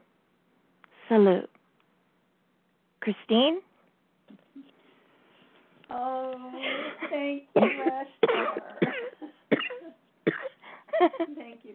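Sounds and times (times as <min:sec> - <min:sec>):
speech: 0:01.1 - 0:01.5, 0:03.0 - 0:03.7, 0:05.9 - 0:09.1, 0:10.3 - 0:11.7
person coughing: 0:06.7 - 0:10.6.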